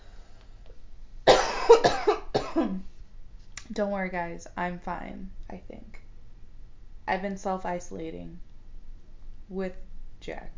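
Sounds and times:
person coughing harshly: 0:01.3 - 0:02.8
speech: 0:03.8 - 0:06.0, 0:07.1 - 0:08.5, 0:09.5 - 0:10.5.

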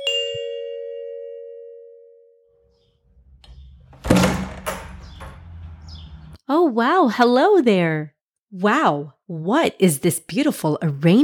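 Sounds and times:
doorbell chiming: 0:00.0 - 0:02.8
door opening with a clatter: 0:02.7 - 0:06.4
speech: 0:06.6 - 0:11.2.

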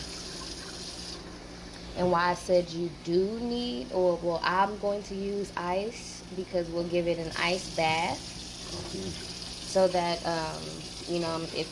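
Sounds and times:
cold running tap water rinsing fruit under a faucet: 0:00.0 - 0:01.3, 0:07.2 - 0:11.6
speech: 0:02.0 - 0:11.6.

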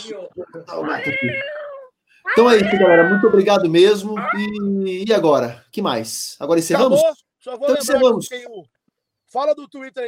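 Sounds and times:
speech: 0:00.0 - 0:01.6, 0:02.2 - 0:10.0
cat long drawn-out meow: 0:00.7 - 0:04.8.

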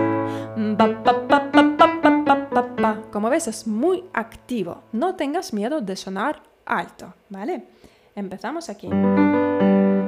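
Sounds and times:
person singing short detached notes with nasal resonance: 0:00.5 - 0:03.2
speech: 0:00.8 - 0:01.7, 0:02.8 - 0:09.4.

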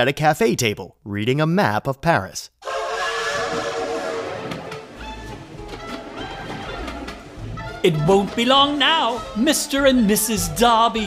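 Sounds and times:
speech: 0:00.0 - 0:02.7, 0:07.8 - 0:11.0
escaping steam at a railway station: 0:02.6 - 0:05.5
steam train whistle at a railway station in London: 0:02.6 - 0:07.1
clanks at a railway station: 0:04.3 - 0:07.8.

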